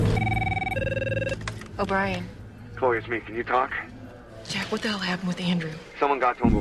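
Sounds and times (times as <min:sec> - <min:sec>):
cell phone ringing tone during outgoing call: 0:00.2 - 0:01.5
speech: 0:01.8 - 0:03.9, 0:04.4 - 0:06.5.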